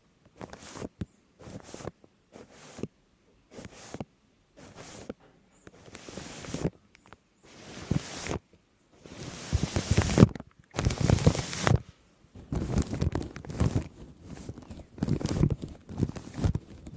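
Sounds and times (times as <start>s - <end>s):
shaving cream crackling and crinkling on a microphone: 0.4s - 2.9s, 5.7s - 6.8s, 7.4s - 8.4s, 9.0s - 16.9s.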